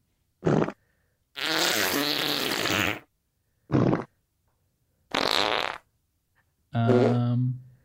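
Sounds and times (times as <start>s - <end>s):
fart noises: 0.4s - 0.8s, 1.4s - 3.1s, 3.7s - 4.2s, 5.1s - 5.9s, 6.8s - 7.5s.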